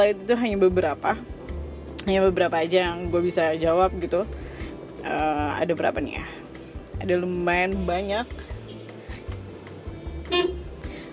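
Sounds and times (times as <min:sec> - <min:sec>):
speech: 0:00.0 - 0:01.4, 0:02.0 - 0:06.4, 0:07.0 - 0:08.5
car horn honk sounded from inside a car: 0:10.0 - 0:10.8.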